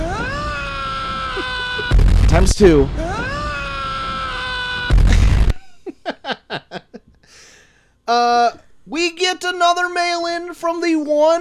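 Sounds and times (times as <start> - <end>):
laughter: 0.0 - 2.0, 5.0 - 7.1
scream sound effect introducing a mail segment: 0.0 - 2.0, 3.0 - 5.1
speech: 2.4 - 3.0, 9.3 - 11.3.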